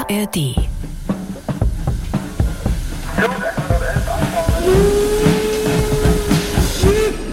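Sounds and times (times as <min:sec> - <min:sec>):
speech: 0:00.1 - 0:00.7
steam train of the Schlossgartenbahn in Karlsruhe chuffing: 0:00.6 - 0:07.2
long steady steam train whistle: 0:02.2 - 0:07.2.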